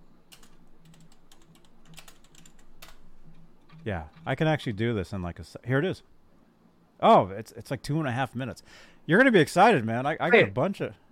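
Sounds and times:
low steady hum: 0:00.0 - 0:11.1
fingers typing on a computer keyboard: 0:00.3 - 0:03.0
speech: 0:03.8 - 0:06.2, 0:07.0 - 0:11.0.

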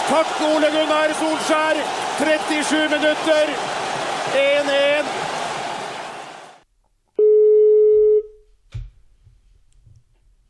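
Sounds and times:
crowd noise: 0:00.0 - 0:06.6
speech: 0:00.1 - 0:05.2
ringback tone on an outgoing phone call: 0:07.2 - 0:08.4.

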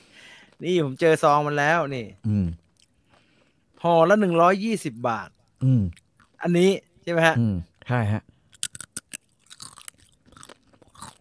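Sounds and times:
speech: 0:00.6 - 0:02.6, 0:03.8 - 0:08.3
crunchy chewing of a crispy three-flavour squid snack: 0:02.0 - 0:06.6, 0:08.4 - 0:11.1.

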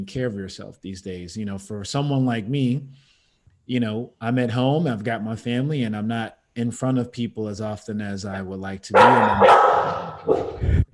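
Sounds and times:
speech: 0:00.0 - 0:03.1, 0:03.7 - 0:10.5
female Australian Shepherd dog barking: 0:09.0 - 0:10.6.

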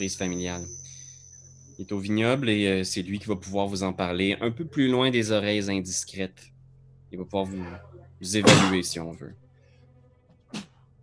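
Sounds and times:
speech: 0:00.0 - 0:00.8, 0:01.8 - 0:06.5, 0:07.1 - 0:09.4
quiet low hum: 0:00.0 - 0:10.1
short explosive sneeze: 0:08.4 - 0:08.8.

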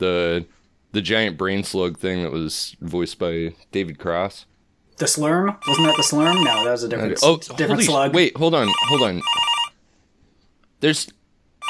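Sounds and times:
speech: 0:00.0 - 0:09.5, 0:10.8 - 0:11.2
telephone bell ringing: 0:05.6 - 0:06.9, 0:08.6 - 0:09.8.

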